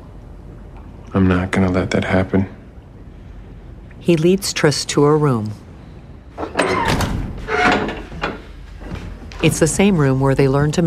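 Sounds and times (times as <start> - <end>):
speech: 1.1 - 2.6, 4.0 - 5.6, 9.4 - 10.8
door pushed shut with a heavy thud: 6.6 - 8.4.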